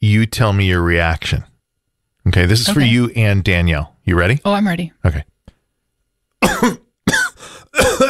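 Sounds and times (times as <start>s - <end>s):
speech: 0.1s - 1.5s, 2.3s - 5.3s, 6.6s - 6.8s
person coughing harshly: 6.4s - 8.0s.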